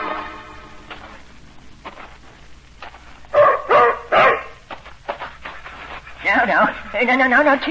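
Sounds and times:
shuffling: 0.2s - 7.6s
German shepherd barking: 3.4s - 4.6s
speech: 7.0s - 7.6s.

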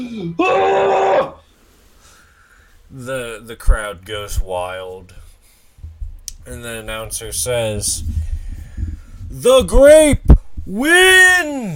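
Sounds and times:
speech: 0.0s - 1.0s, 2.9s - 5.2s, 6.4s - 8.3s, 9.3s - 11.7s
voice imitating a caveman's yell: 0.0s - 1.4s, 9.4s - 11.7s.

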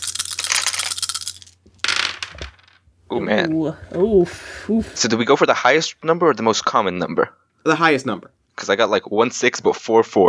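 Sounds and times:
dice rattling and clattering across a hard surface: 0.0s - 2.8s
speech: 3.1s - 10.2s.

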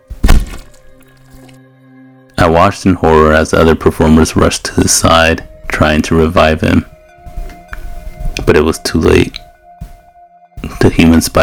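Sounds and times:
heavy dull thud of a body hitting the ground: 0.0s - 1.0s, 6.7s - 11.1s
speech: 2.4s - 6.9s, 8.5s - 9.4s, 10.9s - 11.4s.

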